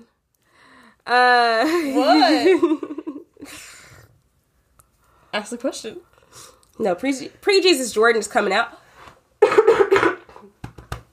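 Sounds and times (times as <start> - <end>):
speech: 1.0 - 2.9, 5.3 - 8.8
raspy fit of coughing: 9.4 - 10.4.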